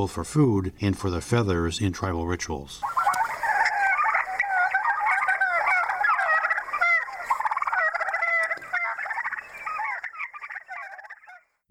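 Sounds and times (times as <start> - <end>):
speech: 0.0 - 3.0
wild turkeys gobbling: 2.8 - 11.6.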